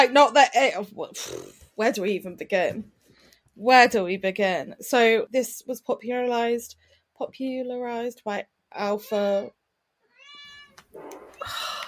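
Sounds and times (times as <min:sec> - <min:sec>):
speech: 0:00.0 - 0:03.0, 0:03.6 - 0:09.6, 0:10.8 - 0:11.8
cat meowing loudly: 0:10.1 - 0:10.8.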